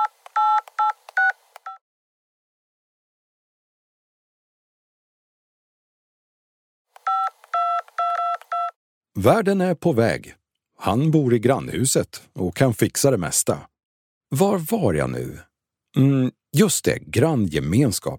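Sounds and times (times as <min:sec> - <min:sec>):
touch-tone telephone keypad beeps of a number being dialed: 0:00.0 - 0:01.8, 0:07.1 - 0:08.8
speech: 0:09.2 - 0:13.7, 0:14.3 - 0:18.1.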